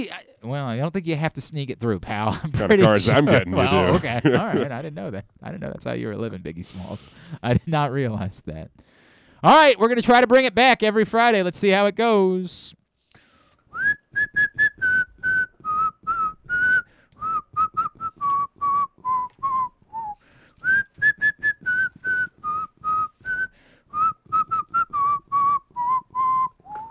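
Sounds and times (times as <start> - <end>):
speech: 0.0 - 12.8
laughter: 2.2 - 4.9
person whistling a melody: 13.7 - 26.8.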